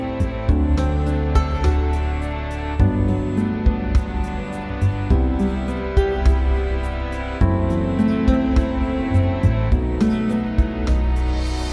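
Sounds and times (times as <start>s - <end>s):
guitar playing: 0.1s - 11.5s.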